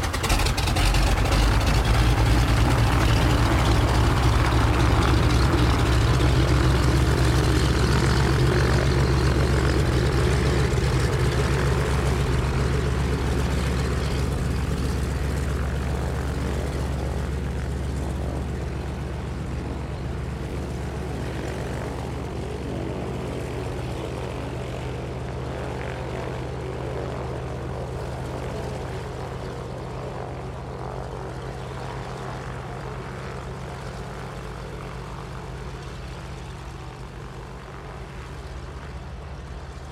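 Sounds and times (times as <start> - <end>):
de Havilland Canada DHC-2 Beaver propeller engine droning: 0.0 - 39.9.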